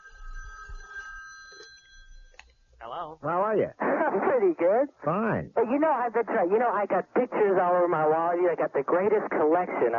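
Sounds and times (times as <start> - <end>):
telephone bell ringing in a steady trill: 0.0 - 2.4
speech: 2.8 - 9.9.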